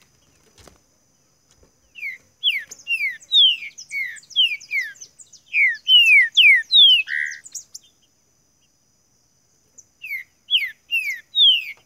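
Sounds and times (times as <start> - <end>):
green-winged saltator giving falling whistles: 2.0 - 7.9, 10.0 - 11.8.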